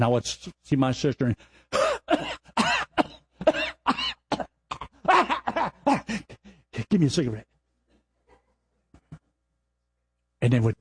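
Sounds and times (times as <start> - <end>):
speech: 0.0 - 2.6, 6.9 - 7.5, 10.4 - 10.7
person coughing: 1.7 - 6.3.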